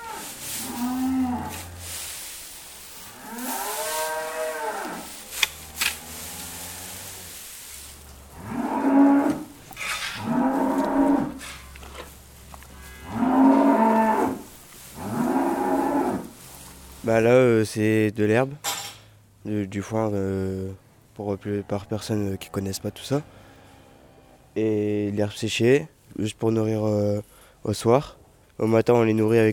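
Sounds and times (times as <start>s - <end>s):
hungry cattle mooing before their evening feed: 0.0s - 1.9s, 3.0s - 11.8s, 12.6s - 16.8s
speech: 17.1s - 18.7s, 19.4s - 23.4s, 24.6s - 29.5s.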